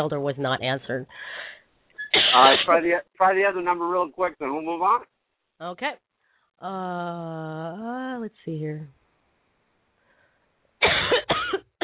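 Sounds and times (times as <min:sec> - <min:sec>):
speech: 0:00.0 - 0:01.6, 0:02.3 - 0:06.0, 0:06.6 - 0:09.0
harsh chesty coughs: 0:02.0 - 0:02.8, 0:10.8 - 0:11.8.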